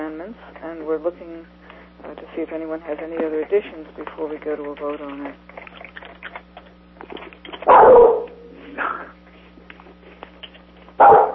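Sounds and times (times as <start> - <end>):
steady electrical hum: 0.0 - 11.3
speech: 0.2 - 5.5
big dog barking: 7.6 - 8.4, 11.0 - 11.3.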